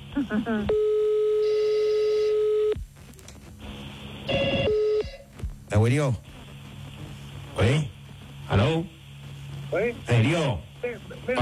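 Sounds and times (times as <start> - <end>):
faint noise: 0.0 - 11.4
speech: 0.2 - 0.9, 5.8 - 6.3, 7.6 - 7.9, 8.5 - 9.0, 9.7 - 11.4
steady electronic telephone hold tone: 0.7 - 2.8, 4.2 - 5.2.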